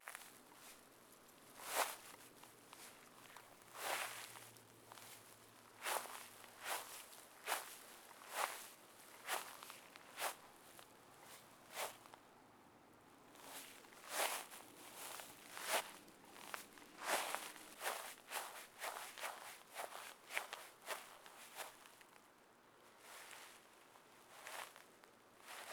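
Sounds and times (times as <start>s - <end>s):
Foley footsteps on grass: 1.6s - 12.0s, 13.4s - 21.9s, 24.4s - 24.8s.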